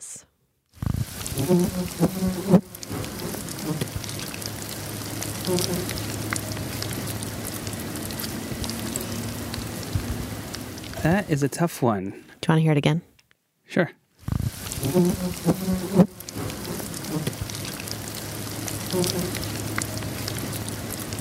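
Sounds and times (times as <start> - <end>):
fly buzzing: 0.8 - 11.0, 14.6 - 21.1
worms crackling and rustling in a worm farm in a garage: 0.8 - 11.4, 14.2 - 21.2
speech: 1.4 - 2.7, 5.5 - 6.1, 11.0 - 13.1, 13.7 - 14.0, 14.9 - 16.1, 19.0 - 19.5.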